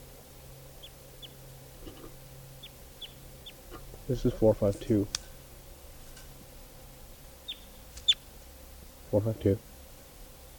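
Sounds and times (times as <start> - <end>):
steady low hum: 0.0 - 10.5
wild birds chirping in trees: 0.8 - 5.6, 7.3 - 8.3
speech: 4.1 - 5.2, 9.1 - 9.7.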